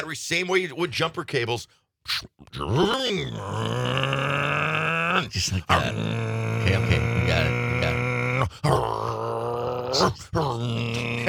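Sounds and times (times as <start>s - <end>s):
speech: 0.0s - 4.4s, 5.2s - 7.5s, 10.0s - 11.2s
man vocally imitating a car engine revving up through gears: 2.5s - 11.2s.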